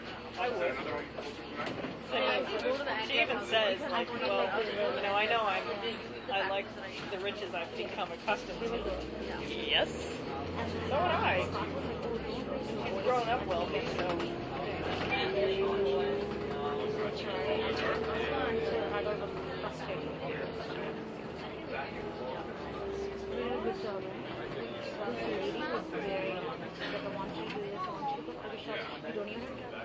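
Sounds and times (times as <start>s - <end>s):
overlapping passenger chatter in a bus interior: 0.0s - 29.8s
speech: 0.4s - 16.3s, 21.8s - 29.8s
steady bus engine rumble: 5.0s - 29.8s.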